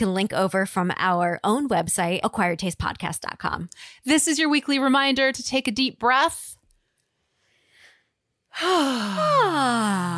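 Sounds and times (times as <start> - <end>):
speech: 0.0 - 6.6, 8.6 - 10.1
person yawning aloud: 8.6 - 10.1.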